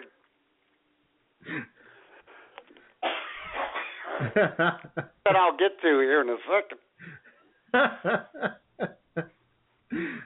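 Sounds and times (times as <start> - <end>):
person coughing: 3.0 - 4.2
speech: 4.2 - 6.8, 7.7 - 9.3.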